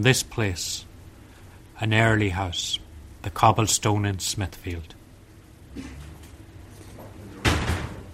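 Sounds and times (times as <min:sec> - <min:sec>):
speech: 0:00.0 - 0:00.9, 0:01.8 - 0:05.0, 0:05.8 - 0:06.0
heavy pub door in Smithfield bumping and rattling as it opens: 0:07.4 - 0:08.1.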